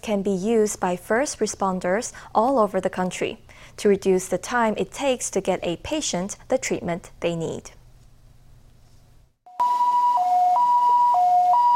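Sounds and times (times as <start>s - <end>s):
speech: 0.0s - 7.8s
ambulance siren in a two-tone wail: 9.5s - 11.7s.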